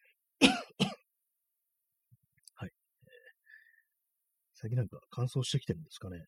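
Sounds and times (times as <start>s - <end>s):
person coughing: 0.4s - 1.0s
speech: 4.6s - 6.2s.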